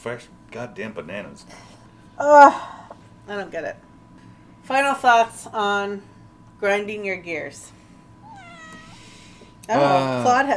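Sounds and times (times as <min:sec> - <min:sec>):
speech: 0:00.0 - 0:03.9, 0:04.6 - 0:07.8, 0:09.7 - 0:10.5
faint hum: 0:00.0 - 0:10.5
cat meowing: 0:08.2 - 0:09.0.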